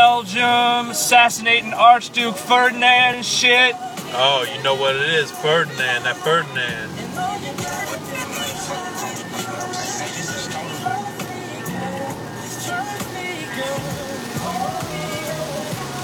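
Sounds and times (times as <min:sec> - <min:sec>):
voices: 0:00.0 - 0:12.1
heavy rain during a rainstorm: 0:00.0 - 0:16.0
speech: 0:00.2 - 0:08.1
low vehicle rumble: 0:01.6 - 0:16.0.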